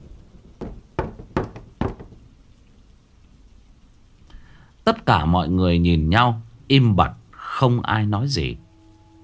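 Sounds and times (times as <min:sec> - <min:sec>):
low steady noise: 0:00.0 - 0:09.2
knocking on a door at night during wind and rain: 0:00.6 - 0:02.3
speech: 0:04.9 - 0:08.6.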